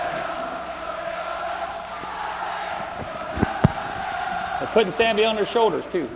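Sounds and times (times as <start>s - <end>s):
big stadium crowd cheering wildly: 0.0s - 6.1s
speech: 4.6s - 6.1s.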